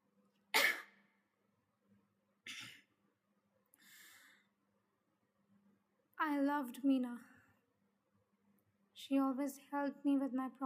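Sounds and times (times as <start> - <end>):
dry coughs: 0.5 - 1.0, 2.4 - 2.9
speech: 6.2 - 7.3, 9.1 - 10.6.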